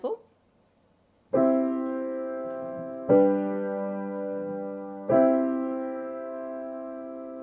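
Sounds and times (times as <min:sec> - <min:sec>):
Western classical music harmonious chords ringing: 0:01.4 - 0:07.4.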